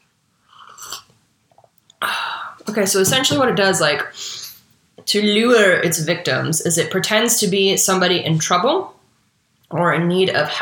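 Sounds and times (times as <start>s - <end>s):
slurping sip of coffee: 0.5s - 1.8s
speech: 2.7s - 4.4s, 5.1s - 9.0s, 9.7s - 10.5s.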